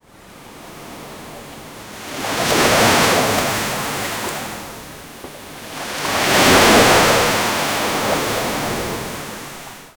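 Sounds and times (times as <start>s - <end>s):
sea waves crashing with loud splashes: 2.0s - 9.9s.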